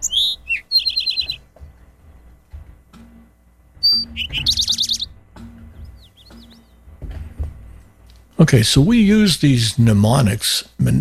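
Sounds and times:
Eastern towhee singing: 0.0 - 1.5, 3.8 - 6.8
faint high bird chirps: 0.0 - 1.5, 3.8 - 5.2, 5.8 - 6.8
speech: 8.4 - 10.9.

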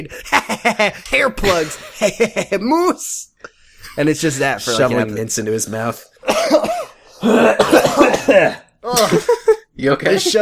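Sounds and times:
speech: 0.0 - 3.3, 3.9 - 10.4
throat-clearing rasps: 6.2 - 9.2
person coughing: 6.2 - 9.4.

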